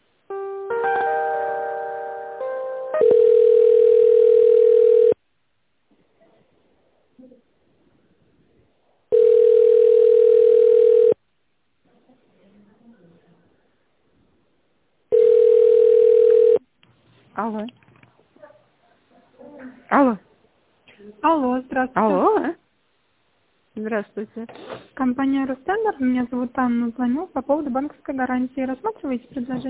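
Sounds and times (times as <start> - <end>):
telephone ringback tone as an office call is transferred: 2.9 - 5.2, 9.1 - 11.2, 15.1 - 16.6
faint indistinct sounds: 5.8 - 29.6
speech: 24.0 - 29.6.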